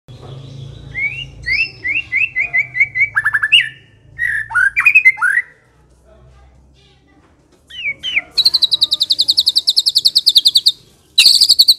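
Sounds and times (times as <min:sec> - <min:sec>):
white-rumped shama singing lure song: 0:00.1 - 0:05.6, 0:07.7 - 0:11.7.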